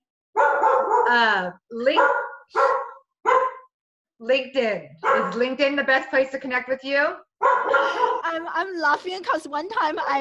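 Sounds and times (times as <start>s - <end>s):
dog barking: 0.4s - 1.2s, 1.9s - 3.7s, 5.0s - 5.5s, 7.4s - 8.3s
speech: 1.1s - 2.8s, 4.2s - 10.1s.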